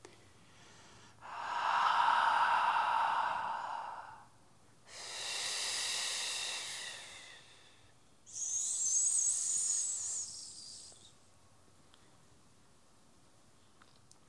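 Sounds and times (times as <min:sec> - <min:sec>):
slow deep breaths during a guided relaxation exercise: 0:00.1 - 0:11.1.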